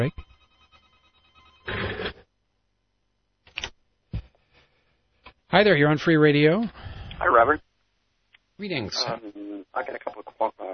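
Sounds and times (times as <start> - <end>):
speech: 0.0 - 0.3, 5.5 - 7.7, 8.6 - 10.7
telephone ringing with an incoming call to a radio talk show: 0.0 - 2.2.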